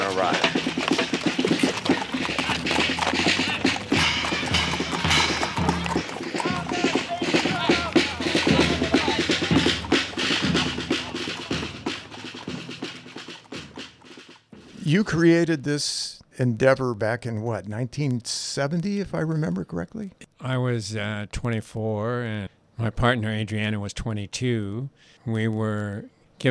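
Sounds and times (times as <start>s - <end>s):
busy crowd murmur: 0.0s - 12.8s
horse-drawn wagon rattles and wheel noise: 0.0s - 15.2s
horse hooves clip-clopping pulling a wagon at a brisk trot: 0.0s - 15.4s
speech: 0.2s - 0.4s, 14.9s - 26.4s.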